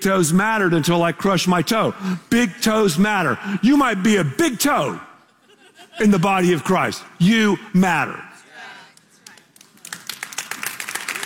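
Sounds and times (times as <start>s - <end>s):
speech: 0.0s - 5.1s, 6.0s - 8.3s
laughter: 5.2s - 6.8s
people clapping: 8.8s - 11.2s.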